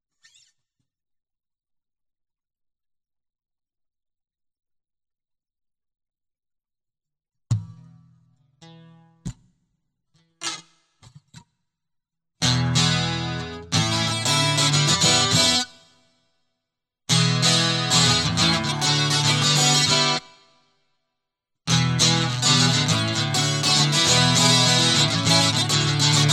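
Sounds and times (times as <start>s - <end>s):
guitar loop: 12.4s - 15.8s, 17.1s - 20.4s, 21.7s - 26.3s.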